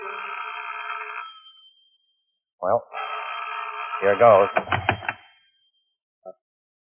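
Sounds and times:
old telephone bell ringing at home after dark: 0.0s - 2.1s, 3.0s - 5.8s
speech: 2.6s - 3.0s, 4.0s - 5.2s.

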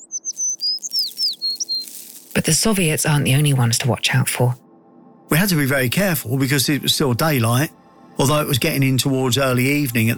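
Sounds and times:
small bird chirping in high thin notes: 0.0s - 2.4s
speech: 2.4s - 4.6s, 5.3s - 10.1s.

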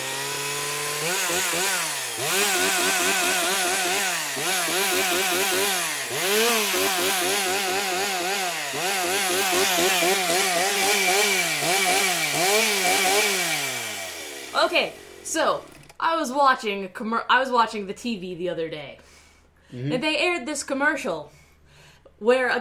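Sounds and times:
chainsaw engine revving up and down: 0.0s - 16.0s
speech: 5.3s - 8.1s, 9.5s - 11.3s, 14.6s - 19.1s, 19.7s - 21.4s, 22.2s - 22.5s.

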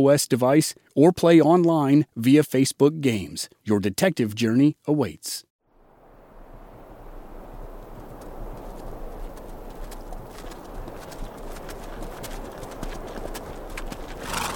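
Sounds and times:
speech: 0.0s - 5.5s
horse hooves clip-clopping on hard ground: 7.5s - 14.5s.

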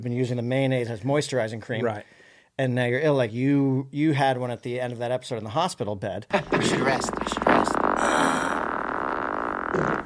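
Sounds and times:
speech: 0.0s - 7.6s
raspy fart sound effect crafted for a TV show: 6.4s - 10.0s.

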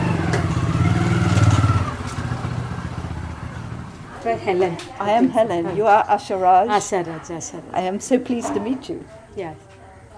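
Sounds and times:
motorbike engine idling: 0.0s - 4.8s
speech: 4.4s - 9.7s.

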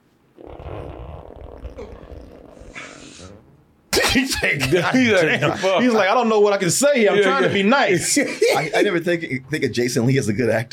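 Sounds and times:
man farting: 0.3s - 4.6s
laughter: 4.1s - 6.2s, 7.1s - 9.0s
speech: 4.1s - 10.7s.

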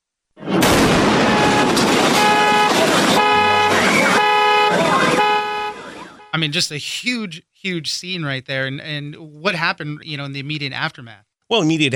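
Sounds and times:
loud rumbling explosion blast: 0.4s - 5.8s
triggered car alarms blaring in pulsing overlapping tones: 1.1s - 6.5s
speech: 6.3s - 11.9s.

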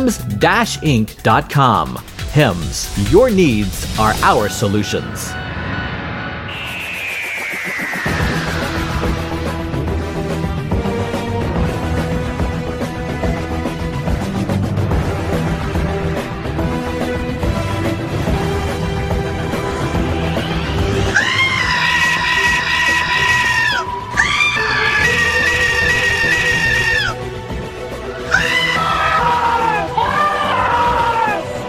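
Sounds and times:
speech: 0.0s - 5.5s
busy music: 0.0s - 31.6s
goats screaming: 21.1s - 27.2s, 28.2s - 31.4s.

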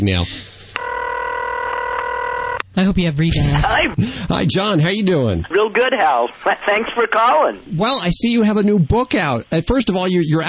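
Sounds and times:
speech: 0.0s - 0.5s, 2.8s - 10.4s
steady electronic telephone keypad tone: 0.8s - 2.6s.

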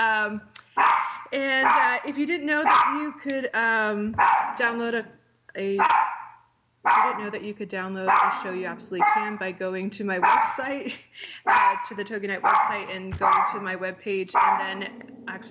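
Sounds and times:
speech: 0.3s - 6.1s, 6.8s - 15.4s
dog barking: 0.8s - 1.9s, 2.6s - 3.1s, 4.2s - 4.6s, 5.8s - 7.3s, 8.1s - 9.4s, 10.2s - 10.6s, 11.5s - 13.6s, 14.4s - 14.8s.

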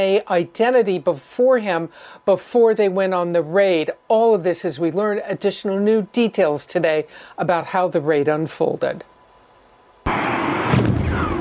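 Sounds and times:
speech: 0.0s - 9.1s
aircraft bombs, missiles and rockets exploding on a compound: 10.1s - 11.3s.

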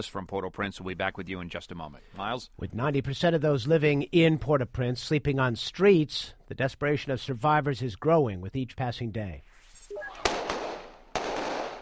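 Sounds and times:
speech: 0.0s - 9.5s
steady noise: 0.0s - 11.7s
gunshots as police chase away scavengers in quake-hit Port-au-Prince: 10.0s - 11.7s.

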